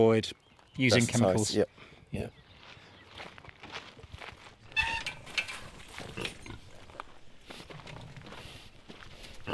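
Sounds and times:
speech: 0.0 - 2.4
footsteps on the ground: 2.3 - 9.5
saddleback pigs grunting and snorting: 5.8 - 6.9, 7.6 - 9.5.

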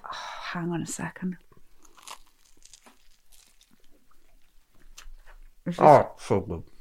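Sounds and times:
speech: 0.5 - 1.4, 5.7 - 6.7
biting and chewing a bacon, banana and brioche sandwich: 1.4 - 5.2.

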